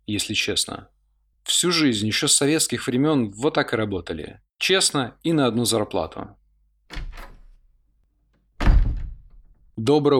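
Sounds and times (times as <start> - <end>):
speech: 0.1 - 6.4, 9.8 - 10.1
door handle rattling: 6.9 - 7.8, 8.6 - 9.8.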